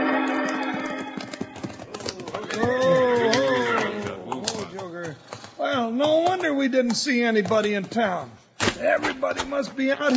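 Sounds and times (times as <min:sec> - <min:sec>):
horses' hooves clopping to a stop: 0:00.1 - 0:08.3
horse whinnying: 0:01.7 - 0:04.2
speech: 0:06.6 - 0:10.1.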